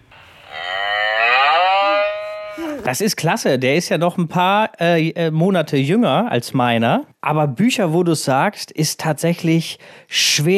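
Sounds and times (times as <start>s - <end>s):
cow mooing from a children's sound book: 0.1s - 2.9s
speech: 2.8s - 10.5s.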